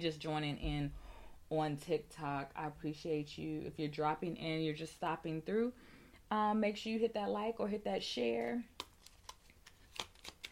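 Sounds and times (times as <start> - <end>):
speech: 0.0 - 8.7
tarot cards shuffling: 8.8 - 10.4.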